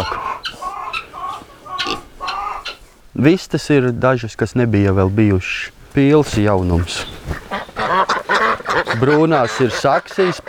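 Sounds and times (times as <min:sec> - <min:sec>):
Vietnamese pot-bellied pigs grunting in a poultry yard: 0:00.0 - 0:02.8, 0:06.7 - 0:10.4
speech: 0:03.2 - 0:07.4, 0:08.9 - 0:10.4.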